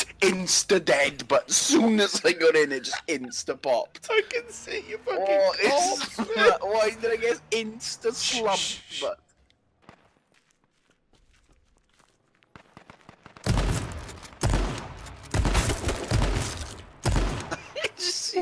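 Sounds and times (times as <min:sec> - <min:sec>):
speech: 0:00.2 - 0:09.2
laughter: 0:01.2 - 0:07.4, 0:17.5 - 0:18.3
soft quick footsteps: 0:09.2 - 0:12.8
video game shotgun blasts: 0:12.6 - 0:17.7.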